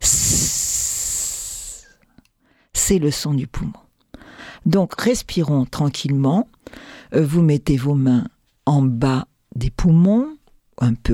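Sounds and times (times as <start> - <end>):
voice imitating a rattlesnake's hiss: 0.0 - 2.0
speech: 2.9 - 3.8, 4.6 - 11.1.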